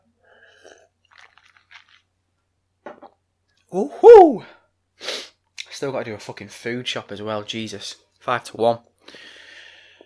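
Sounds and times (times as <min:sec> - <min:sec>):
sipping and swallowing water: 0:00.4 - 0:02.2
speech: 0:03.7 - 0:04.6, 0:05.8 - 0:09.2.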